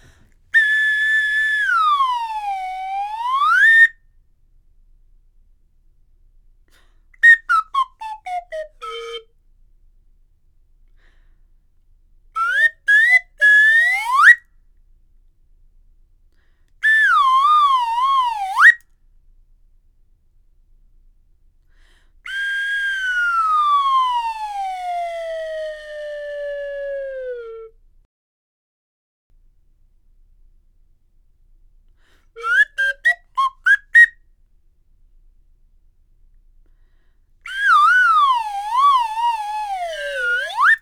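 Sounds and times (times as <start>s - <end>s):
slide whistle glides: 0.6s - 4.0s, 7.2s - 9.2s, 12.4s - 14.4s, 16.8s - 18.9s, 22.3s - 27.8s, 32.4s - 34.2s, 37.5s - 40.7s.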